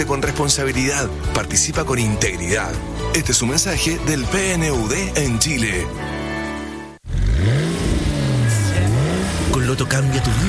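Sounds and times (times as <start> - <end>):
speech: 0.0 - 6.2, 9.7 - 10.4
sports car engine revving and accelerating: 7.0 - 10.4.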